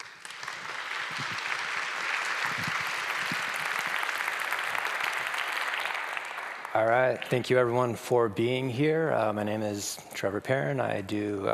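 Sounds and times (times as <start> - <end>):
sustained audience applause: 0.0 - 7.5
speech: 6.8 - 11.5.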